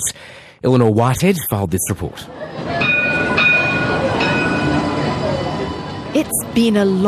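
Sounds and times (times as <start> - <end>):
speech: 0.0 - 2.6, 6.2 - 7.0
light rail tram rumbling on tracks: 2.1 - 7.0
tram wheel metallic squeal: 2.5 - 7.0.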